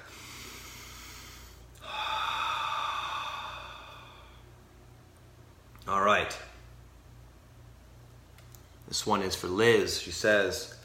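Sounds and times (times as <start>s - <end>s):
deep breath taken by speaker: 0.0s - 4.6s
speech: 6.0s - 6.5s, 8.9s - 10.8s.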